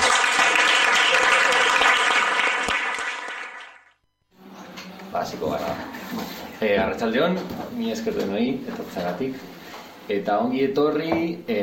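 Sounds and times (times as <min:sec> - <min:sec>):
crowd applauding: 0:00.0 - 0:03.9
speech: 0:05.2 - 0:11.6.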